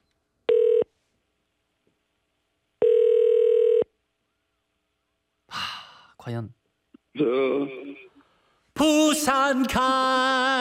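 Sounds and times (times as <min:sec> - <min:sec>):
telephone line tone while placing a call: 0:00.5 - 0:00.9, 0:02.8 - 0:03.9
speech: 0:06.2 - 0:08.1, 0:08.8 - 0:10.5.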